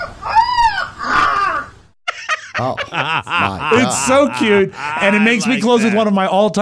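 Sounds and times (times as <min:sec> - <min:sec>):
young golden retriever or Labrador puppy in a farmyard howling in imitation of a rooster's crow: 0:00.0 - 0:01.7
laughter: 0:02.1 - 0:06.3
speech: 0:02.6 - 0:06.5.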